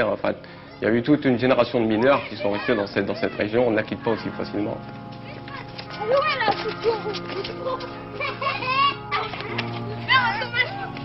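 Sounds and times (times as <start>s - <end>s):
speech: 0.0s - 5.0s, 6.0s - 10.8s
children shouting and calling outdoors in play: 0.7s - 11.0s
laughter: 6.0s - 11.0s.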